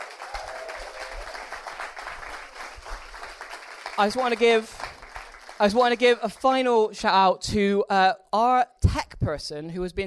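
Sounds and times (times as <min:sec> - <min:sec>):
audience at a storytelling event applauding: 0:00.0 - 0:06.5
speech: 0:04.0 - 0:04.9, 0:05.6 - 0:10.0.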